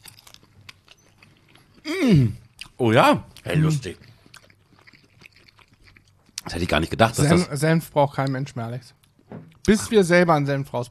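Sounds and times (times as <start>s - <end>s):
biting and chewing on a bratwurst with sweet and sticky sauce: 0.0s - 1.9s, 2.5s - 6.9s
speech: 1.9s - 4.1s, 6.5s - 9.0s, 9.7s - 10.8s.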